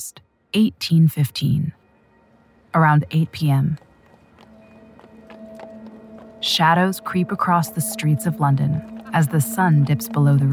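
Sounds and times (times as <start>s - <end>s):
speech: 0.0s - 1.8s, 2.8s - 3.9s, 6.4s - 10.5s
steady low hum: 0.0s - 10.5s
horse hooves clopping on a hard cobbled street: 2.9s - 10.5s.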